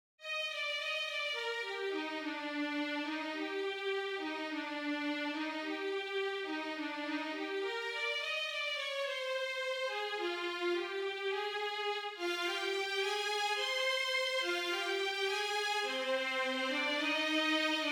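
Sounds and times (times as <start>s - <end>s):
full string section melody: 0.2s - 17.8s.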